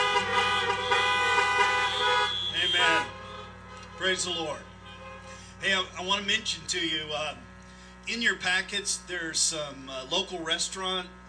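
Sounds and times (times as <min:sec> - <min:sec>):
car horns honking: 0:00.0 - 0:06.1
speech: 0:04.0 - 0:04.7, 0:05.6 - 0:11.2.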